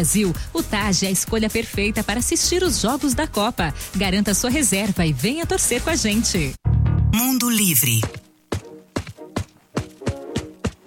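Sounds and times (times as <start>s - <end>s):
speech: 0.0s - 8.2s
footsteps of people running together: 8.0s - 10.8s.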